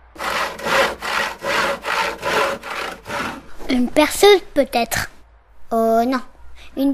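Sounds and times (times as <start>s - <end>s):
hand saw cutting wood: 0.0s - 3.6s
speech: 3.7s - 5.1s, 5.7s - 6.9s.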